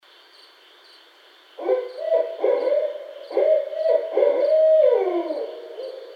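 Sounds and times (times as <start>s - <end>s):
barred owl hooting and caterwauling: 1.6s - 6.1s.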